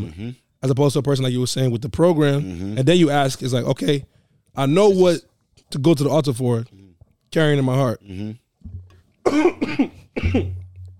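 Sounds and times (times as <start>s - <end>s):
speech: 0.0s - 10.6s
harsh coughs: 9.2s - 10.6s.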